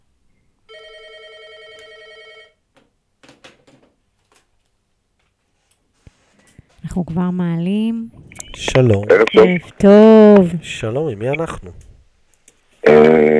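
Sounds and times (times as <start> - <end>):
telephone ringing for incoming call: 0.7 - 2.6
speech: 6.9 - 11.9.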